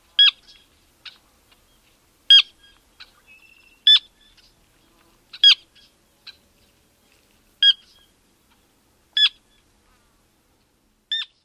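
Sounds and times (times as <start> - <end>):
calls: 0.0 - 6.4, 7.6 - 9.7, 11.1 - 11.4.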